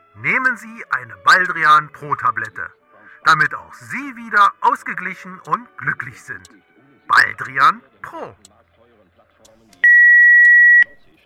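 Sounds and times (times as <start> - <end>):
speech: 0.2 - 8.5
faint murmur: 5.4 - 11.2
mobile phone electronic beep: 9.8 - 11.1.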